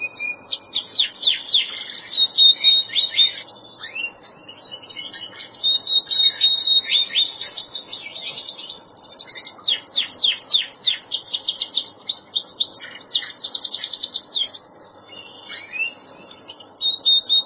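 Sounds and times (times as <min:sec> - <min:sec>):
Canary singing: 0:00.0 - 0:17.4.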